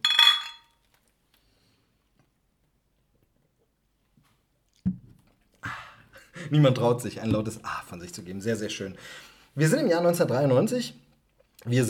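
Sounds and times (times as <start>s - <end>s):
beer glasses clinking in a toast: 0.0s - 0.7s
speech: 6.5s - 11.0s, 11.6s - 11.8s.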